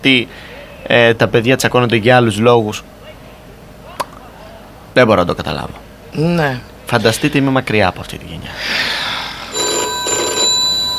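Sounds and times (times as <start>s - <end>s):
speech: 0.0s - 3.0s, 5.0s - 8.9s
steady hum: 0.0s - 10.9s
telephone ringing with a bright electronic trill: 9.5s - 10.9s.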